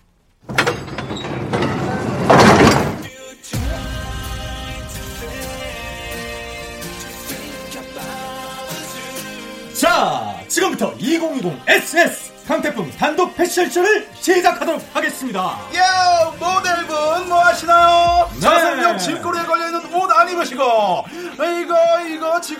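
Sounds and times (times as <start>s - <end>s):
heavy abandoned train carriage door sliding open: 0.4s - 3.1s
steady music: 1.6s - 22.5s
speech: 11.2s - 22.5s.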